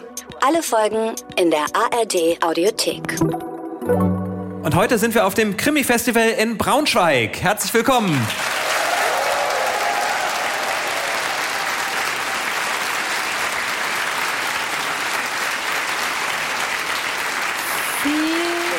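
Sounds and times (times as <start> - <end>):
speech: 0.4 - 4.0, 4.7 - 8.5
large live audience applauding in a school hall in Braunschweig, Germany: 8.0 - 18.7.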